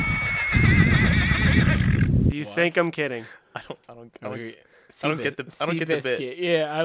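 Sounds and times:
horse neighing high-pitched and quavering: 0.0s - 2.2s
speech: 2.3s - 6.8s.

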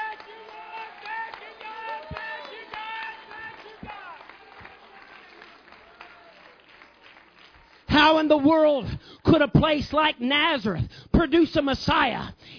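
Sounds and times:
church congregation clapping hands in praise: 0.0s - 8.7s
speech: 8.0s - 12.4s.

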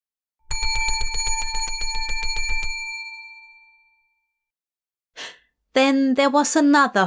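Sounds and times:
bell ringing in a rapid trill: 0.5s - 3.7s
speech: 5.8s - 7.0s.

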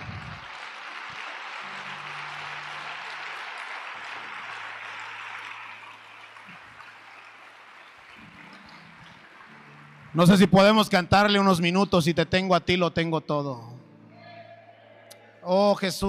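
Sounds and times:
large crowd applauding: 0.0s - 11.7s
speech: 10.2s - 13.7s, 15.4s - 16.0s.

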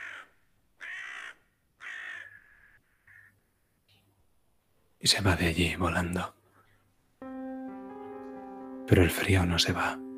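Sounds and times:
crow cawing: 0.0s - 3.7s
speech: 5.0s - 6.4s, 8.9s - 10.0s.

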